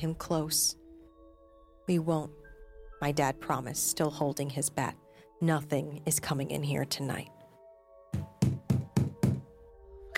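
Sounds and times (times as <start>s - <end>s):
speech: 0.0s - 0.8s, 1.9s - 2.4s, 3.0s - 7.4s
heavy knocking on a door: 8.2s - 9.5s.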